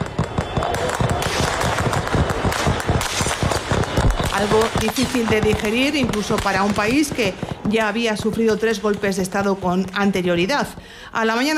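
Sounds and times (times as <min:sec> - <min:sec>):
rapid gunfire bursts from low-flying aircraft: 0:00.0 - 0:08.3
speech: 0:04.4 - 0:11.5.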